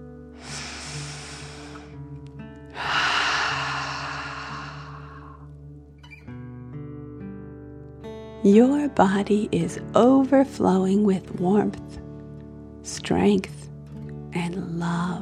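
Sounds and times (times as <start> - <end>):
deep breaths in through nose and out through mouth: 0.4 - 2.0, 2.7 - 5.5
speech: 8.4 - 11.9, 13.1 - 13.6.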